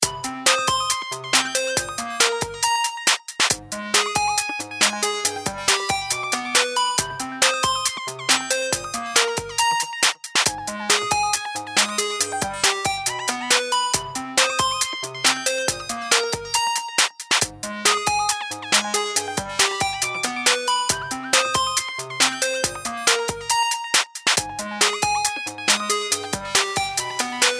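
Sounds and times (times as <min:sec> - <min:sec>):
synthesizer: 0:00.0 - 0:27.5.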